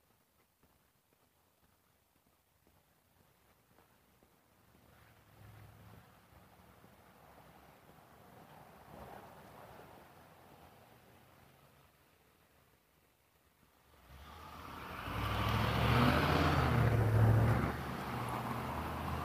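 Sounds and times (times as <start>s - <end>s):
truck driving past with engine rumble and road roar: 14.0s - 19.2s.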